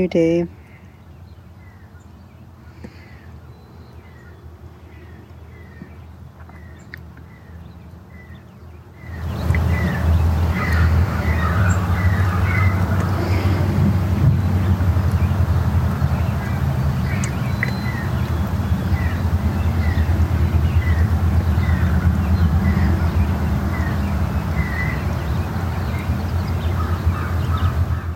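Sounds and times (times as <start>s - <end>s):
speech: 0.0s - 0.6s
red-eyed vireo singing short repeated phrases: 0.0s - 28.1s
constant low rumble: 9.0s - 28.1s.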